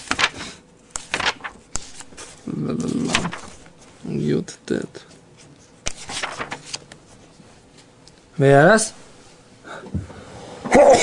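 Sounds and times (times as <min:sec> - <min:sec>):
speech: 0:02.7 - 0:05.2, 0:08.4 - 0:09.0
quiet breathing: 0:09.6 - 0:10.6
single sharp sneeze: 0:10.7 - 0:11.0.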